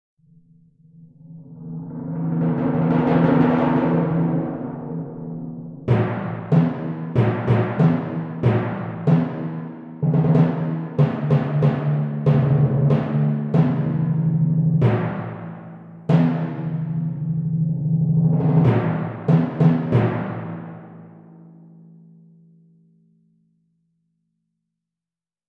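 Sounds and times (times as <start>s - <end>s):
timpani drumming: 2.2s - 21.3s.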